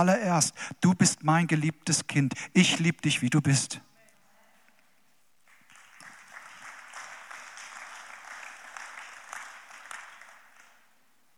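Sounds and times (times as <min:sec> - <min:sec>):
speech: 0:00.0 - 0:03.9
audience clapping: 0:05.4 - 0:11.3.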